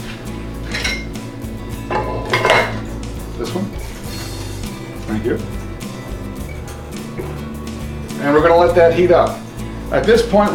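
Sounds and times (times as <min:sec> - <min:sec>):
metal cookware clattering as a pot of vanilla milk is set on a stove: 0:00.6 - 0:01.2, 0:01.8 - 0:02.9
speech: 0:03.4 - 0:03.9, 0:05.1 - 0:05.6, 0:08.2 - 0:10.5.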